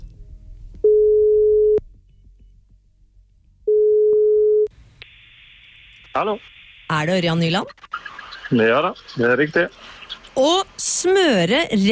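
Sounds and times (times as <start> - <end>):
telephone call tones while placing a call: 0.9 - 1.8, 3.7 - 4.7
speech: 6.2 - 11.9.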